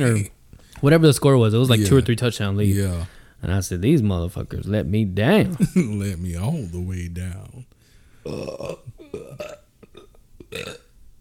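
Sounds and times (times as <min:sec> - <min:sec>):
speech: 0:00.0 - 0:09.6, 0:10.5 - 0:10.8
burp from someone having digestion issues: 0:08.3 - 0:10.9.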